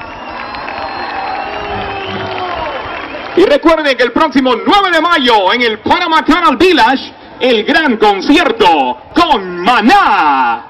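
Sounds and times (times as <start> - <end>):
large crowd whooping and shouting: 0.0 - 3.7
large crowd clapping: 0.0 - 4.5
speech: 3.4 - 10.6.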